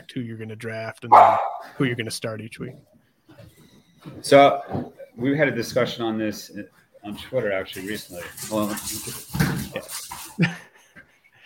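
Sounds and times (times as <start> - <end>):
speech: 0.1 - 10.6
puppy yipping and barking: 1.1 - 1.7.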